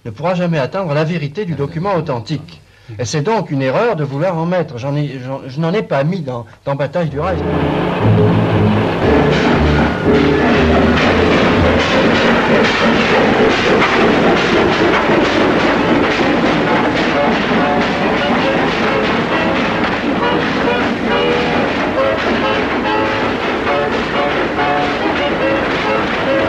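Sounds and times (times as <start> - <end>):
speech: 0.0 - 11.3, 12.5 - 16.3
train passing through a station in the evening: 7.1 - 26.4.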